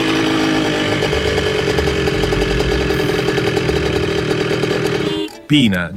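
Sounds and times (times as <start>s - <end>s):
high-displacement motor scooter engine revving: 0.0s - 5.4s
speech: 5.5s - 5.9s.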